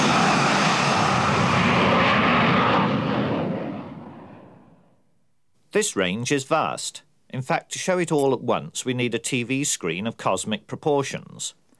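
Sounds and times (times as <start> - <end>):
jet aircraft roaring during takeoff: 0.0 - 4.9
speech: 5.7 - 11.6.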